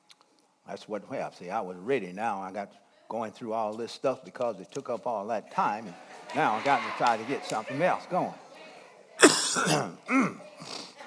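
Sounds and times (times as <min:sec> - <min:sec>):
speech: 0:00.7 - 0:08.4, 0:09.5 - 0:10.8
harsh hacking coughing: 0:09.2 - 0:10.7
throat clearing: 0:09.2 - 0:10.7.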